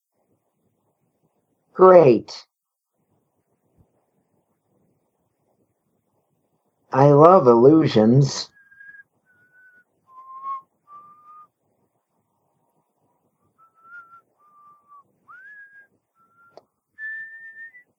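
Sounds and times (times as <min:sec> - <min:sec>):
speech: 0:01.8 - 0:02.5, 0:06.9 - 0:08.5
person whistling a slow wandering tune: 0:08.6 - 0:11.5, 0:13.6 - 0:17.8.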